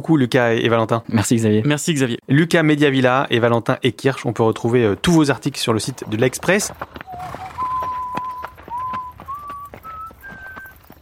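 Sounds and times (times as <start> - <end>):
speech: 0.0 - 7.4
horse hooves clip-clopping at a walking pace: 4.5 - 11.0
person whistling a simple tune: 7.1 - 11.0.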